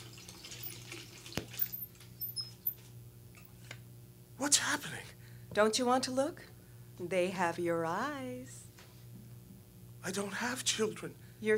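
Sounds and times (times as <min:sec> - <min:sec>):
bathtub tap water running: 0:00.0 - 0:02.9
speech: 0:04.4 - 0:08.6, 0:10.0 - 0:11.5.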